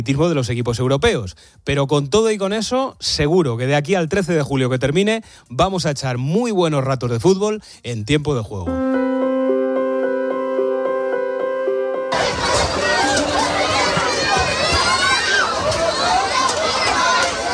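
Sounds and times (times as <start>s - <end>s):
speech: 0.0s - 9.3s
sustained tonal music: 8.7s - 15.2s
crowd crushing together at a food distribution in Gaza: 11.6s - 17.5s.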